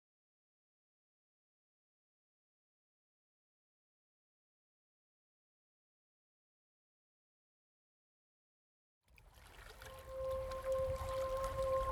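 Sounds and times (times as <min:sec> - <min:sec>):
water gently lapping against a small boat: 0:09.1 - 0:11.9
faint sustained tone: 0:09.6 - 0:11.9.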